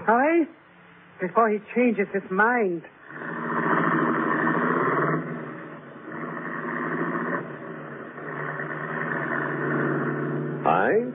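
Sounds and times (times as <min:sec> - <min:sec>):
speech: 0:00.0 - 0:00.6, 0:01.2 - 0:03.3, 0:10.8 - 0:11.1
car engine running as car turns around: 0:03.0 - 0:11.1.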